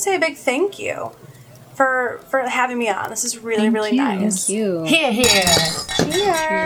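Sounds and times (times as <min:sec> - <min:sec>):
speech: 0:00.0 - 0:06.6
beer glasses clinking in a toast: 0:00.4 - 0:03.2, 0:05.2 - 0:06.6.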